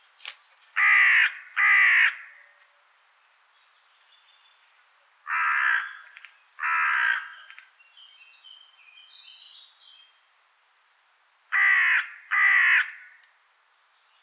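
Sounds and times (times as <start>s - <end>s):
carrion crow Corvus corone giving harsh raspy caws: 0.8s - 2.4s, 5.3s - 7.5s, 11.5s - 13.2s.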